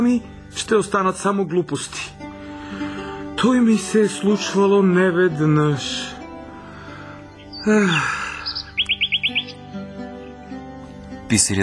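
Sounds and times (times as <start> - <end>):
speech: 0.0 - 6.1, 7.6 - 8.2, 11.3 - 11.6
small birds chirping while hopping from branch to branch: 6.2 - 11.2
harsh scratchy bird call: 7.3 - 9.6.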